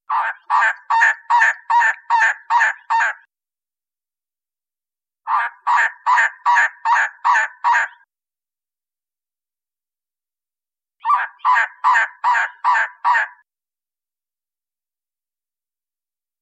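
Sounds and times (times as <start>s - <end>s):
Elegant Trogon calling: 0.1s - 3.3s, 5.3s - 8.1s, 11.0s - 13.4s.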